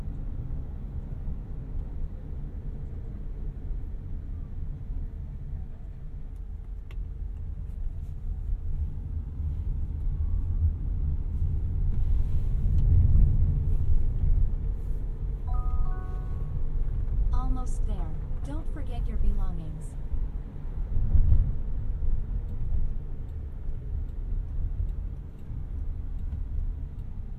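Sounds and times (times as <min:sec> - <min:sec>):
low road rumble inside a moving self-driving car: 0:00.0 - 0:27.3
soft electronic chimes in a self-driving car: 0:15.5 - 0:16.6.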